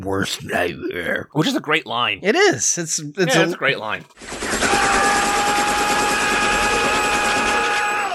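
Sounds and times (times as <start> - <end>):
speech: 0.0 - 5.6
helicopter rotor chopping in a film scene: 4.1 - 7.7.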